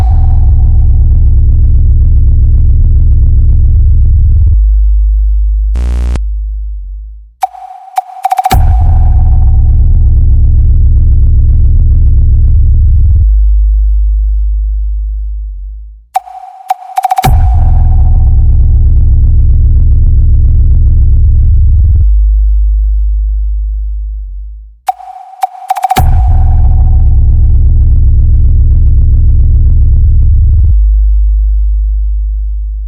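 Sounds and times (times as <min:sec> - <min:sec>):
deep bass test tone for a sound check: 0:00.0 - 0:32.8
short clicks and glitches: 0:05.8 - 0:06.2, 0:07.4 - 0:09.4, 0:16.2 - 0:18.4, 0:24.9 - 0:27.1.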